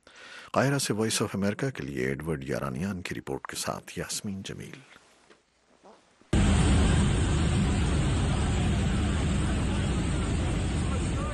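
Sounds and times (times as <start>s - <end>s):
speech: 0.5s - 5.0s
helicopters hovering overhead: 6.4s - 11.3s.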